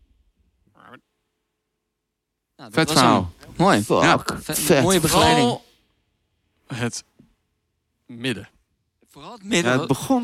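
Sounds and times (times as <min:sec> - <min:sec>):
voice imitating a frog croak: 0:00.7 - 0:01.1
speech: 0:00.9 - 0:01.1, 0:02.6 - 0:05.6, 0:06.7 - 0:07.1, 0:08.1 - 0:08.6, 0:09.2 - 0:10.2.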